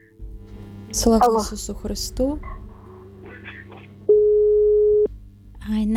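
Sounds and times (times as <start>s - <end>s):
speech: 0.9s - 2.6s
telephone busy signal after a dropped phone call: 4.1s - 5.1s.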